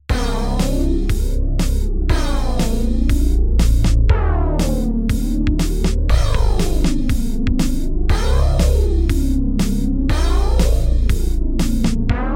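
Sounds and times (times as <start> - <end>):
trembling gliding oscillator bass: 0.1 - 12.3.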